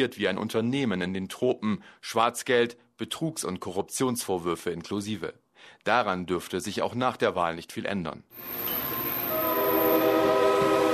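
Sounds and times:
speech: 0.0s - 9.2s
locomotive horn blaring while pulling into a railway station: 8.8s - 10.9s.

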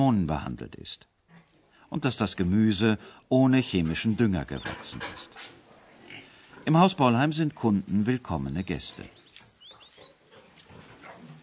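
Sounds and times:
speech: 0.0s - 1.1s, 1.9s - 5.6s, 6.6s - 9.2s
pigs on a farm grunting and snuffling: 3.7s - 11.4s.

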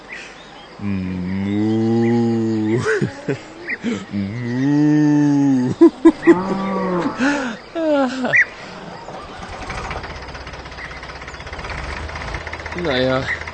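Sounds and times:
steady engine rumble: 0.7s - 13.5s
speech: 0.8s - 1.7s, 2.7s - 5.2s, 12.8s - 13.4s
cow mooing: 0.8s - 2.9s, 6.2s - 7.4s
laughter: 0.8s - 10.0s.

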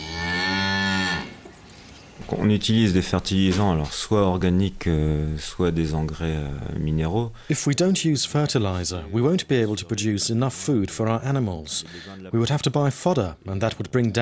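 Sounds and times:
cow mooing on a dairy farm in Brittany: 0.0s - 1.4s
speech: 2.3s - 14.1s.

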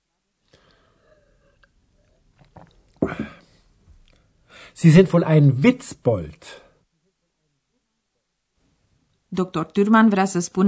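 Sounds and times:
quiet breathing: 0.4s - 2.3s, 2.9s - 4.8s
faint mouth sounds: 0.5s - 4.3s
gulping slurp of beer: 2.4s - 2.8s
person swallowing beer: 2.4s - 3.5s
speech: 4.8s - 6.6s, 9.4s - 10.6s.

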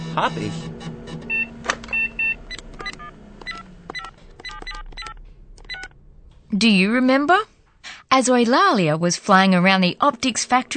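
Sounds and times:
low steady hum: 0.0s - 10.7s
speech: 0.2s - 0.8s, 6.5s - 7.5s, 8.1s - 10.7s
mobile phone keypad beeps as a number is dialed: 1.3s - 5.9s.

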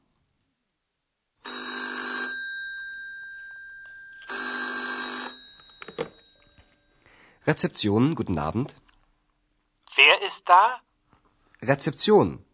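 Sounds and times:
hotel telephone ringing with a buzzing electronic trill: 1.5s - 7.0s
speech: 7.4s - 8.8s, 10.5s - 10.8s, 11.6s - 12.5s.

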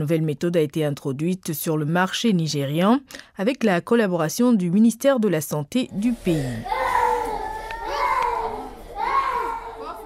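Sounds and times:
speech: 0.0s - 6.8s
young children crying during a malaria blood test in a Nigerian hospital: 6.5s - 10.0s.

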